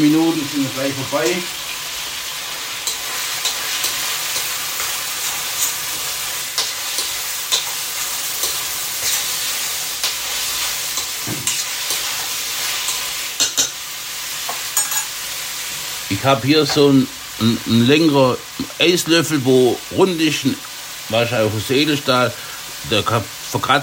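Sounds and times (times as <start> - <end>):
speech: 0.0 - 1.7, 16.2 - 23.8
food searing in a hot pan: 0.0 - 23.8.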